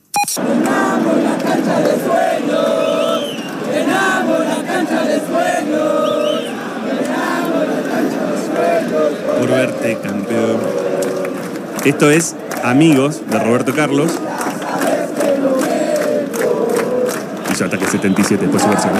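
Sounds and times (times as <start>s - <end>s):
speech: 0.3s - 2.8s, 8.4s - 10.8s, 11.8s - 14.4s, 17.6s - 18.9s
large crowd of football supporters singing a terrace chant in unison: 0.4s - 18.9s.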